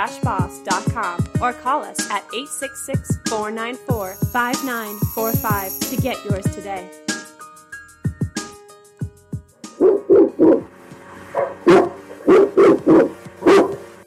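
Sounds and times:
speech: 0.0 - 7.0
dog barking: 9.8 - 10.6, 11.4 - 13.8.

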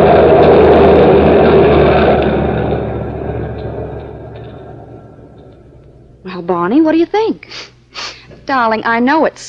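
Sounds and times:
heavy truck engine rumbling past: 0.0 - 7.1
speech: 6.7 - 9.4.

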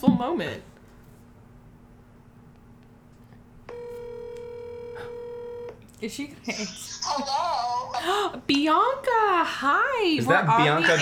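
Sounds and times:
speech: 0.2 - 0.7, 6.0 - 10.9
telephone line click: 3.7 - 5.8.

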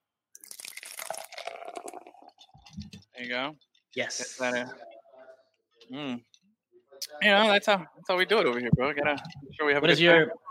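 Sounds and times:
drink being poured: 0.4 - 3.2
speech: 3.2 - 4.9, 5.9 - 6.3, 7.2 - 10.4.

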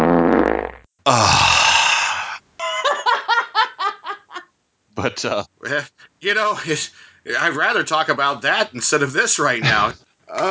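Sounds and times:
sputtering fart sound effect: 0.0 - 0.9
speech: 1.0 - 1.5, 5.0 - 10.4
hearty laughter: 2.6 - 4.4.

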